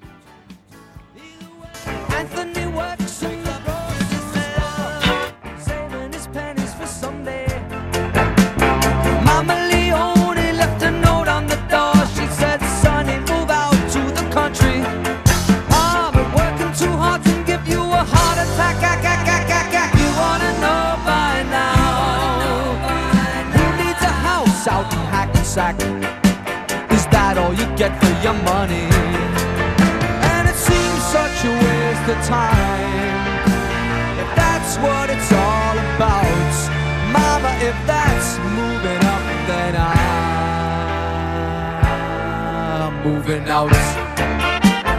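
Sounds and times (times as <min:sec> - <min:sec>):
pop rock song intro with full band: 0:00.0 - 0:44.9.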